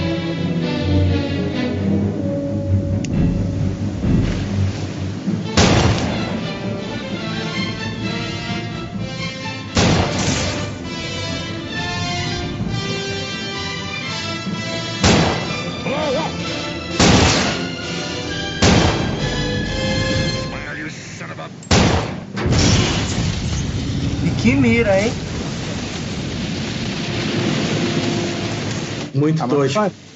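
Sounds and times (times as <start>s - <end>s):
dense rumbling movie soundtrack music: 0.0s - 29.2s
explosions: 3.1s - 8.8s, 9.7s - 13.4s, 15.0s - 15.8s, 17.0s - 17.8s, 18.6s - 20.5s, 21.7s - 29.2s
gunshots: 5.6s - 6.5s, 9.8s - 10.9s, 15.0s - 15.8s, 17.0s - 19.4s, 21.7s - 29.1s
speech: 29.3s - 30.0s.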